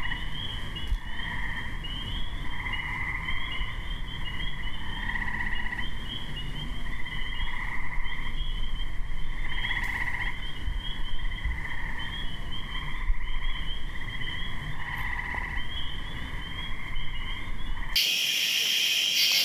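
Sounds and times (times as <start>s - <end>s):
May evening chorus of amorous frogs: 0.0s - 19.4s
burst of noise: 18.0s - 19.4s.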